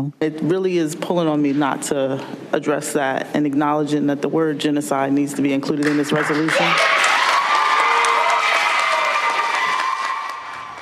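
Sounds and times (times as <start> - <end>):
speech: 0.0 - 7.0
audience applauding at council meeting: 5.8 - 10.8
people cheering and whooping at council meeting: 6.2 - 10.8.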